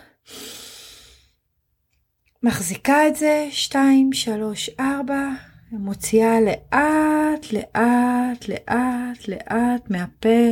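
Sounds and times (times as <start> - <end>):
deep inhale through the nose during a deep-breathing exercise: 0.0 - 1.4
speech: 2.4 - 10.4.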